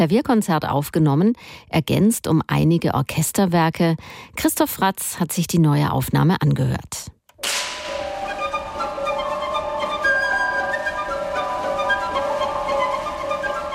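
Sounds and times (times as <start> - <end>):
speech: 0.0 - 7.2
orchestral slapstick crack of two wooden boards struck together: 7.4 - 8.0
bright orchestral music: 7.6 - 13.7.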